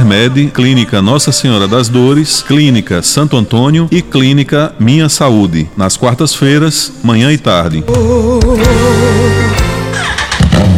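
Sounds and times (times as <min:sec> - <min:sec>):
speech: 0:00.1 - 0:10.7
motorcycle engine revving: 0:10.0 - 0:10.7.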